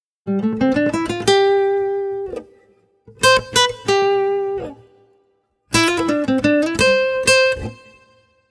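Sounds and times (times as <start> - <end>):
nylon string guitar solo: 0.3 - 5.0, 5.7 - 8.2.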